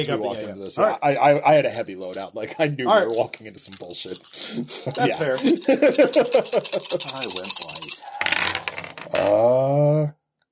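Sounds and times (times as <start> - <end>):
speech: 0.0 - 8.5, 9.2 - 10.2
laughter: 4.4 - 7.5
dice clattering across a hard tabletop: 5.3 - 9.3.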